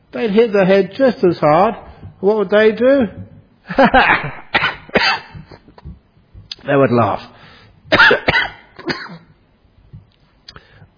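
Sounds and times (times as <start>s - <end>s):
speech: 0.1s - 4.4s, 6.7s - 7.4s
harsh coughs: 4.0s - 5.7s, 7.9s - 9.4s.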